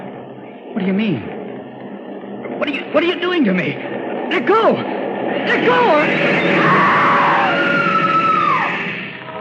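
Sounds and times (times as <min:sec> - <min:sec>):
speech: 0:00.8 - 0:01.4, 0:02.6 - 0:07.0
woman screaming on a train platform: 0:06.6 - 0:08.8.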